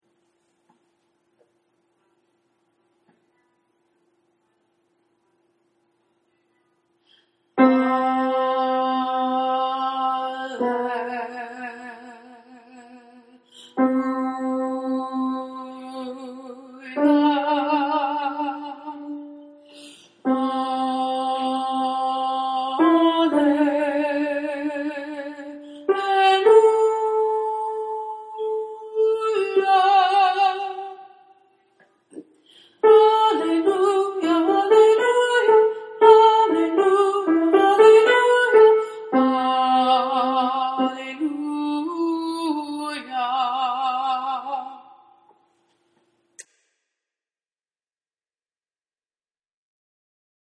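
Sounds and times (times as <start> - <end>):
alto voice singing an alleluia in six-four time: 7.6 - 19.6, 20.2 - 31.4, 32.8 - 45.0.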